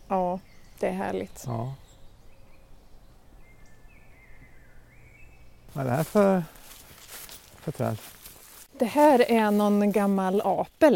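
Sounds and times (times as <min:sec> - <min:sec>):
faint birdsong in oak pasture woodland: 0:00.0 - 0:10.9
speech: 0:00.1 - 0:01.8, 0:05.7 - 0:06.6, 0:07.6 - 0:08.2, 0:08.8 - 0:10.9.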